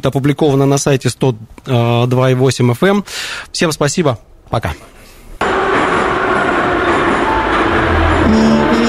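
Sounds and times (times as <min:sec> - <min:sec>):
speech: 0:00.0 - 0:05.0
metro train roaring through a tunnel: 0:05.4 - 0:08.8.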